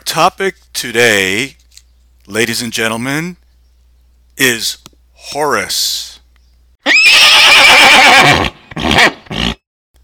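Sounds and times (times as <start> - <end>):
speech: 0.1 - 1.6, 2.3 - 3.4, 4.4 - 6.1
horse whinnying: 6.8 - 9.6
horse snorting: 8.2 - 9.6.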